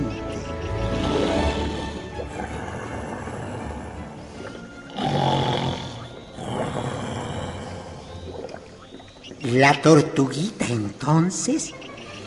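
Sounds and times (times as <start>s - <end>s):
tiger snoring loudly with a growling edge: 1.0s - 8.4s
speech: 9.5s - 11.9s.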